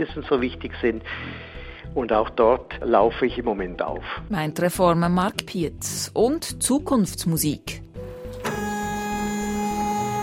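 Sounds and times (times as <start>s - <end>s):
speech: 0.0s - 7.8s
3D printer whining motor tones: 8.0s - 10.2s.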